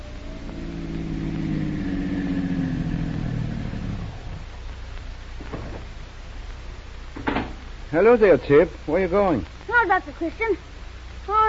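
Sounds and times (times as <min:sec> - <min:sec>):
car engine humming as car pulls up to curb: 0:00.0 - 0:07.2
speech: 0:07.9 - 0:11.4.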